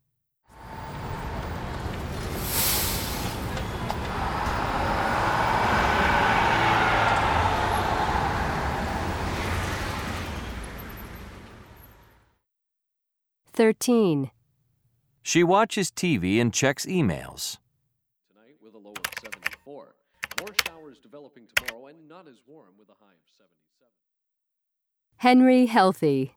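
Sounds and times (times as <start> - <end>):
bus engine rumbling: 0.6 - 12.2
busy road traffic: 0.6 - 12.2
speech: 13.6 - 14.4, 15.2 - 17.6, 22.2 - 23.6, 25.2 - 26.3.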